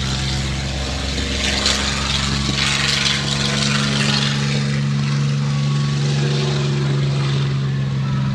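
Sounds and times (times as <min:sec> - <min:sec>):
Yak propeller aircraft engine roaring past: 0:00.0 - 0:08.3.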